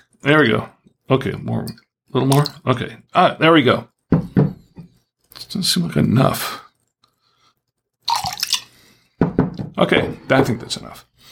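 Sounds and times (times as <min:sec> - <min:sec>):
speech: 0:00.0 - 0:03.9, 0:05.4 - 0:06.6, 0:09.8 - 0:11.1
mulled wine pouring into a glass saucepan: 0:08.0 - 0:08.9.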